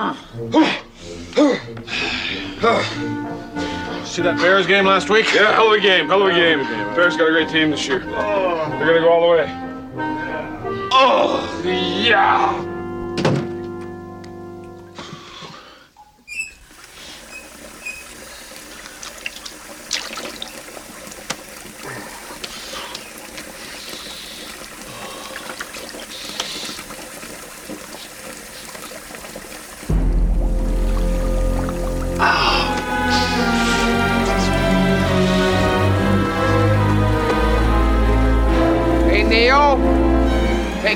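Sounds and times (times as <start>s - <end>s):
speech: 0.0s - 10.1s, 10.9s - 13.4s
water running from a sink tap: 16.3s - 40.4s.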